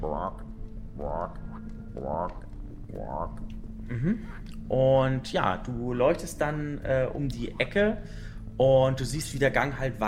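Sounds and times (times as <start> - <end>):
frog croaking: 0.0 - 4.6
speech: 0.1 - 10.0.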